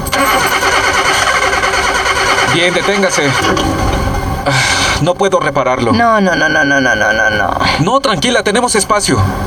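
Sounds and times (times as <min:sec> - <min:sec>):
car engine starter cranking: 0:00.1 - 0:05.1
speech: 0:02.6 - 0:09.4.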